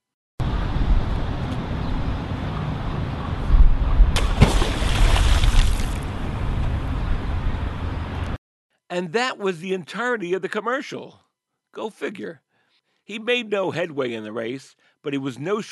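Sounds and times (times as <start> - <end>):
wind: 0.4 - 8.4
water: 3.9 - 6.2
rock thrown into water splashing: 4.2 - 6.0
speech: 8.9 - 12.4, 13.1 - 15.6.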